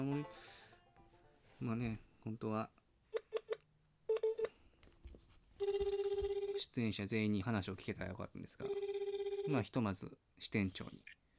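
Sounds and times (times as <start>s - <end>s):
speech: 0.0s - 0.6s, 1.6s - 2.8s, 5.6s - 8.8s, 9.5s - 11.2s
steady pulsing telephone ringback tone: 5.6s - 6.6s, 8.7s - 9.6s.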